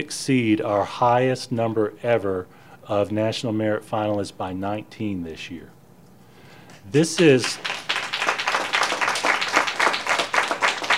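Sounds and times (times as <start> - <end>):
speech: 0.0 - 5.8, 6.9 - 7.7
crowd applauding: 7.2 - 10.9.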